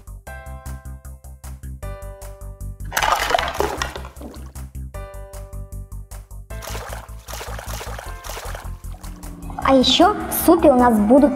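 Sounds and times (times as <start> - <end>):
steady rhythmic music: 0.0 - 10.1
water splashing and sloshing as vegetables are rinsed: 2.9 - 4.6, 6.6 - 9.4
speech: 9.7 - 11.3.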